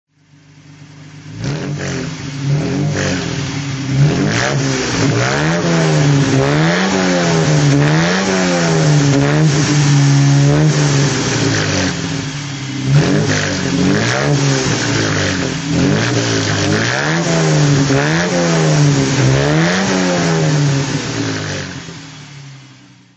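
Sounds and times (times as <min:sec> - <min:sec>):
1957 Lancia Aurelia B20 GT series 6 engine throttle: 0:00.5 - 0:23.1.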